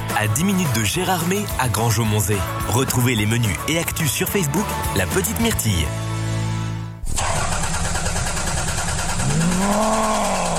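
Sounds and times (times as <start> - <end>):
speech: 0.2 - 6.1
car engine cranking, starting and revving: 7.0 - 10.5.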